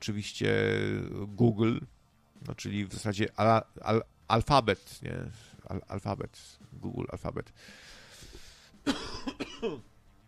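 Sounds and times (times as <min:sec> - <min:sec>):
speech: 0:00.0 - 0:08.0, 0:08.8 - 0:09.9
harsh raspy smoker's cough: 0:08.8 - 0:09.8.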